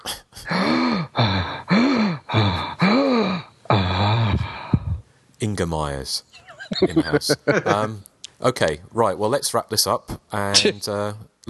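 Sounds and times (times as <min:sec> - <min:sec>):
person breathing in and out heavily: 0:00.1 - 0:05.1
speech: 0:05.6 - 0:11.3
laughter: 0:06.5 - 0:07.9.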